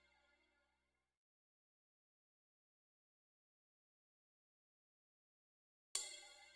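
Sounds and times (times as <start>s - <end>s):
drum loop with cymbal: 6.0s - 6.4s.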